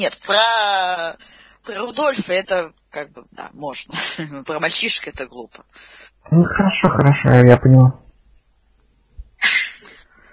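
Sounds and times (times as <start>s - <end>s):
speech: 0.0s - 8.0s
person sneezing: 9.4s - 10.0s.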